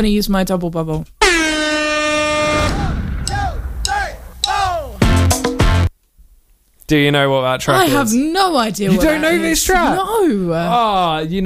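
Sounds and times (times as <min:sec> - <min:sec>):
speech: 0:00.0 - 0:01.2, 0:06.9 - 0:11.4
loud steady air horn blast: 0:01.2 - 0:05.9
music with sharp hits: 0:02.2 - 0:05.9.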